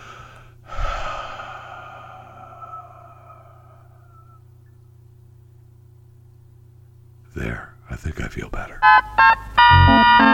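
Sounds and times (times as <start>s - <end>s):
deep breath: 0.0s - 4.4s
speech: 7.4s - 10.3s.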